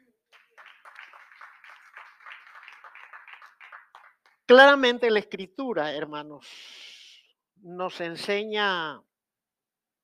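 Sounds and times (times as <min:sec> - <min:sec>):
audience clapping: 0:00.0 - 0:04.8
speech: 0:04.5 - 0:06.8, 0:07.6 - 0:09.1.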